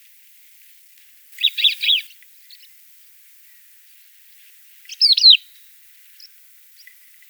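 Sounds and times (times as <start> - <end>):
crested lark Galerida cristata calling with slurred whistled notes: 1.4 - 2.1, 4.9 - 5.5.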